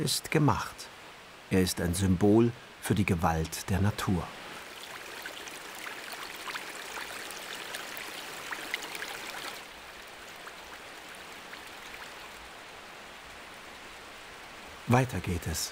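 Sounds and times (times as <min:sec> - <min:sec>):
speech: 0:00.0 - 0:00.9, 0:01.5 - 0:04.4, 0:14.9 - 0:15.7
water rushing down a man-made waterfall: 0:00.0 - 0:15.7.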